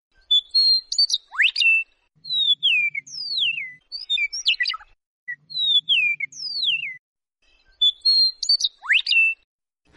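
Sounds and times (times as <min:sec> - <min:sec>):
Eastern Meadowlark singing with metallic trill: 0:00.2 - 0:09.5.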